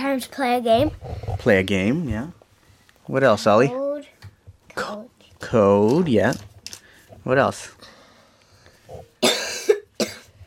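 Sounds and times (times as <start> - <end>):
speech: 0.1 - 2.4, 3.1 - 3.8, 5.5 - 6.5, 7.2 - 7.8
child coughing: 9.2 - 10.4.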